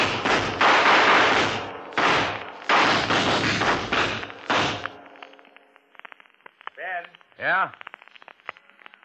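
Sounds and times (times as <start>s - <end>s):
explosion blowing up a gunman behind cars in a staged shootout: 0.0s - 5.1s
speech: 7.4s - 7.8s.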